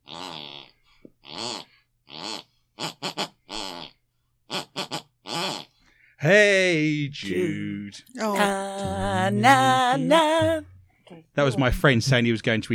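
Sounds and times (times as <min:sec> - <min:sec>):
woman's buzzing snores tracing a song melody: 0:00.0 - 0:04.0
speech: 0:06.2 - 0:10.7, 0:11.4 - 0:12.7.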